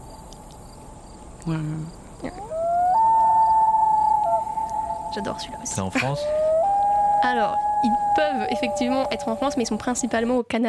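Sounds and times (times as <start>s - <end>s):
speech: 1.4s - 2.5s, 5.2s - 6.4s, 7.2s - 10.6s
common loon wailing: 2.2s - 10.4s.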